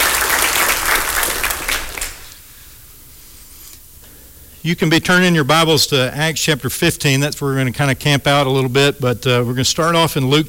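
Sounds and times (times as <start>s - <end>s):
church audience applauding for newly baptized men: 0.0s - 2.4s
speech: 4.6s - 10.4s.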